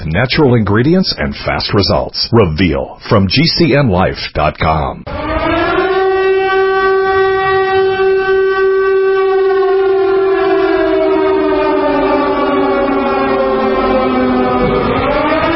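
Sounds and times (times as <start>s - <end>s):
speech: 0.1s - 5.2s
air raid siren wailing: 5.1s - 15.5s.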